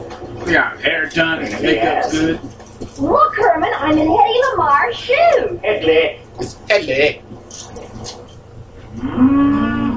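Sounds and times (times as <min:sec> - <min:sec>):
speech: 0:00.4 - 0:07.7
cow mooing: 0:09.0 - 0:09.9.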